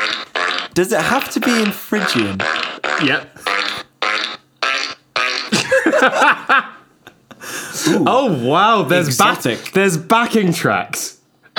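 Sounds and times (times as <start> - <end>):
fart noises played on a fart keyboard: 0.0 - 5.8
speech: 0.8 - 3.5, 6.0 - 6.7, 7.8 - 11.5
laughter: 5.5 - 8.1.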